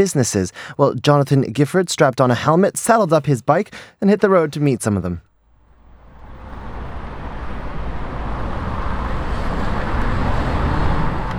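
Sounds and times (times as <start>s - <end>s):
speech: 0.0s - 5.3s
city street traffic in Prenzlauer Berg, northeastern Berlin, Germany: 5.5s - 11.3s.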